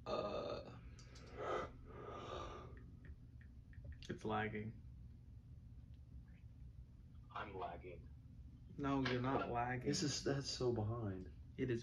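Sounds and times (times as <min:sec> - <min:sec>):
long drawn-out yawn with voiced groan and breathy exhales: 0:00.0 - 0:02.8
speech: 0:04.1 - 0:04.9, 0:07.4 - 0:08.2, 0:08.8 - 0:11.8.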